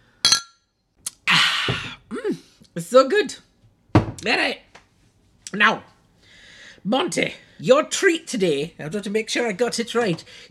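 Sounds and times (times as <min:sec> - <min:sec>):
drinking glasses clinking in a toast: 0:00.2 - 0:00.6
speech: 0:02.8 - 0:03.5, 0:04.2 - 0:04.7, 0:05.5 - 0:05.9, 0:06.8 - 0:10.4.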